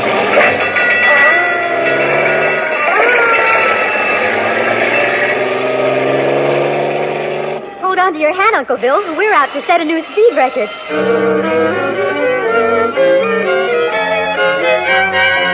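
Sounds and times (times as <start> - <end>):
fire engine roaring: 0.0 - 15.5
speech: 8.2 - 11.6.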